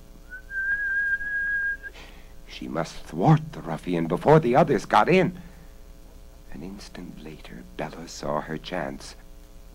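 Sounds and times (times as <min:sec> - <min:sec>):
man giving a sustained shrill whistle at a window: 0:00.3 - 0:02.0
speech: 0:02.5 - 0:05.5, 0:06.5 - 0:09.2.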